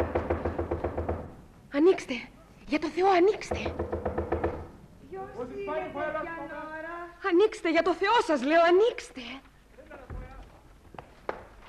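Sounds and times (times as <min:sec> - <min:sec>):
quick firm knocks on a door: 0:00.0 - 0:01.4, 0:03.3 - 0:04.8
speech: 0:01.8 - 0:04.0, 0:05.3 - 0:09.5
person speaking urgently: 0:05.0 - 0:07.2.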